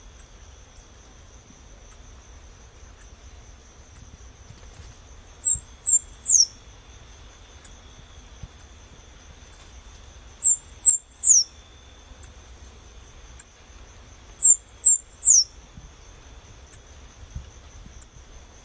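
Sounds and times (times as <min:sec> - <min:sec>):
high insect-like hum: 0:00.0 - 0:18.6
half-collared sparrow Arremon semitorquatus song: 0:04.5 - 0:06.6, 0:10.2 - 0:11.6, 0:14.2 - 0:15.6.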